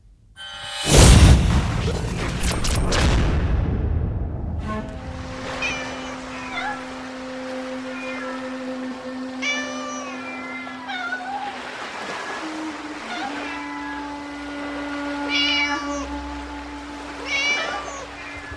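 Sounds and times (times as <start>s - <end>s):
loud sharp crash: 0.4s - 5.7s
many cats meowing and yowling at an island cat sanctuary in Japan: 5.5s - 16.2s, 17.1s - 18.5s.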